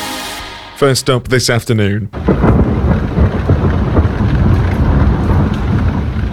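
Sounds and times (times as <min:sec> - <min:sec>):
speech: 0:00.8 - 0:02.6
deep rumbling thunder: 0:02.1 - 0:06.3
loud continuous storm roar: 0:02.1 - 0:06.3.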